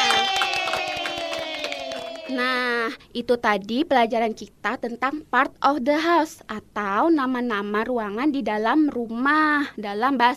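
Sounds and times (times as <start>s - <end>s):
children clapping: 0.0s - 2.6s
speech: 2.3s - 10.3s.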